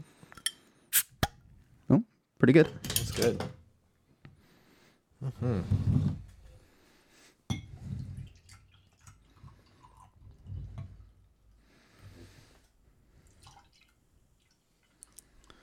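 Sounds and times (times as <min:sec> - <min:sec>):
glass bottle of homebrewed extra special bitter beer opening click against the microphone: 0:00.3 - 0:01.3
speech: 0:01.9 - 0:03.6, 0:05.2 - 0:06.1.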